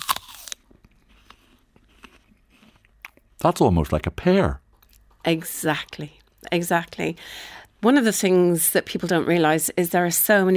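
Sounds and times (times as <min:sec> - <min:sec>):
crisp bite into a russet apple: 0:00.0 - 0:03.6
speech: 0:03.4 - 0:04.6, 0:05.2 - 0:10.5.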